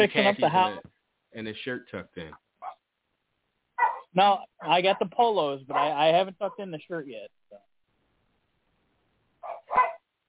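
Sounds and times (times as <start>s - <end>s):
laughter: 0.0s - 0.8s
speech: 0.0s - 2.4s, 4.2s - 7.7s
dog barking: 3.8s - 5.1s, 5.7s - 6.6s, 9.4s - 10.0s.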